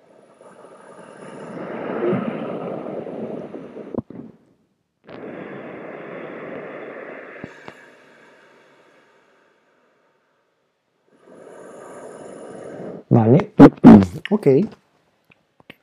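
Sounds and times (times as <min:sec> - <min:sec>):
slow raspy ujjayi ocean breaths through a constricted throat: 0:00.0 - 0:04.4, 0:05.1 - 0:13.1
speech: 0:13.2 - 0:14.8.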